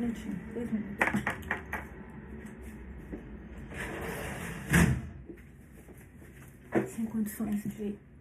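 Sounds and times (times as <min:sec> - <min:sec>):
speech: 0:00.1 - 0:01.2, 0:07.0 - 0:08.1
door or window sliding shut with a rumbling scrape and thud: 0:03.7 - 0:05.2.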